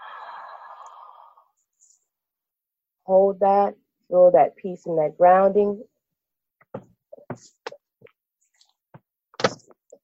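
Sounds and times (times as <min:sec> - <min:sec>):
deep inhale through the mouth during a guided breathing exercise: 0:00.0 - 0:01.6
speech: 0:03.1 - 0:05.9.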